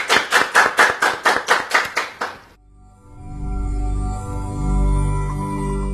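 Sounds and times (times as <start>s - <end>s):
group clapping in a steady rhythm: 0.0s - 2.6s
low sustained musical tones humming: 2.6s - 5.9s.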